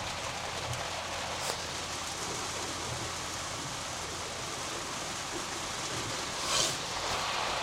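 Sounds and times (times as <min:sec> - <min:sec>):
heavy rain drumming on the roof and glass of a moving car: 0:00.0 - 0:07.6
brief bright swish: 0:06.4 - 0:07.2.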